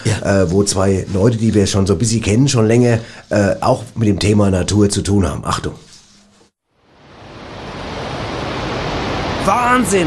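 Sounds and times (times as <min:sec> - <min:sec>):
speech: 0:00.2 - 0:05.8, 0:09.5 - 0:10.0
rushing masses of water: 0:06.9 - 0:10.0.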